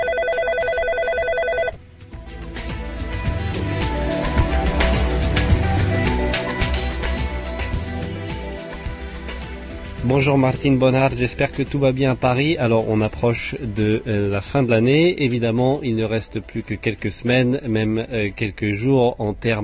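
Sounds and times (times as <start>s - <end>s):
telephone ringing with a bright pulsing electronic tone: 0.0s - 1.8s
loud music with rhythmic beats: 2.0s - 12.8s
speech: 10.1s - 19.6s.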